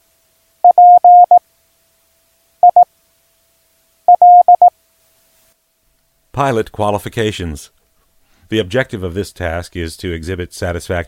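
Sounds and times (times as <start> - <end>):
mid-pitched Morse code beeping tone: 0.6 - 1.4, 2.6 - 2.8, 4.1 - 4.7
speech: 6.4 - 7.8, 8.5 - 11.0.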